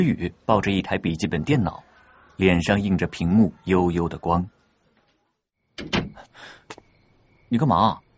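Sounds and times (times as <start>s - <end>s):
speech: 0.0s - 4.6s, 5.8s - 6.8s, 7.5s - 8.0s
dormitory room door being opened: 5.8s - 6.3s.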